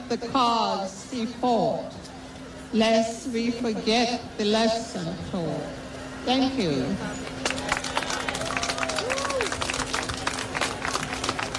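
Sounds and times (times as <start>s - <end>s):
faint murmuring voices: 0.0s - 11.5s
steady low electrical hum: 0.0s - 11.5s
speech: 0.1s - 2.1s, 2.7s - 7.4s
audience clapping after a poem reading: 7.4s - 11.5s.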